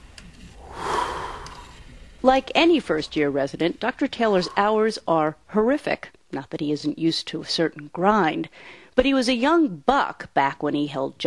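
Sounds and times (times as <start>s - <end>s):
patient taking a deep breath in and out through the mouth: 0.5s - 2.2s
speech: 2.2s - 11.2s.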